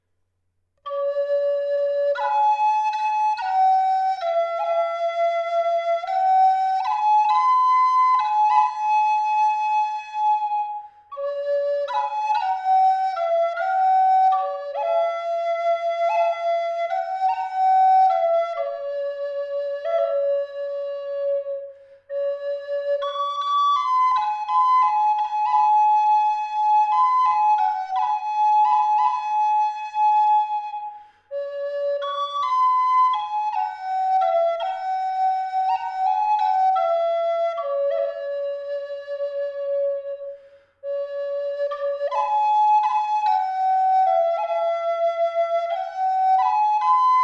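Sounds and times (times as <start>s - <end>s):
Eastern Red Cedar flute in high D tuned to 432 Hz: 0.8s - 47.2s.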